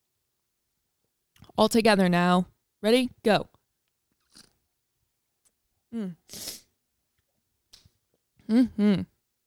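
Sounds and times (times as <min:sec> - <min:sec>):
speech: 0:01.6 - 0:03.5, 0:05.9 - 0:06.6, 0:08.5 - 0:09.1
short vocal utterances: 0:06.0 - 0:06.6, 0:08.4 - 0:09.2
nose sniffle: 0:06.2 - 0:06.7.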